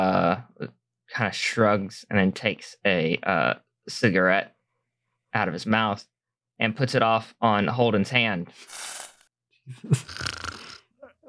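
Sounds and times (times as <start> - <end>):
speech: 1.2 - 4.6, 5.3 - 9.0, 9.7 - 10.3
person mimicking a snore with their voice: 9.9 - 10.9.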